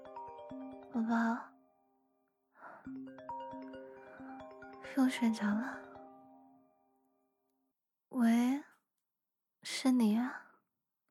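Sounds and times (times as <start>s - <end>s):
mobile phone ringtone with electronic melody: 0.0s - 1.9s, 2.8s - 6.8s
speech: 0.5s - 1.5s, 5.0s - 5.8s, 8.2s - 8.4s.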